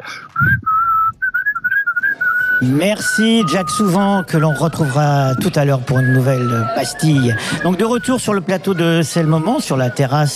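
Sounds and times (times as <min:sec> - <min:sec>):
person whistling a tune: 0:00.1 - 0:09.4
speech: 0:02.6 - 0:10.3.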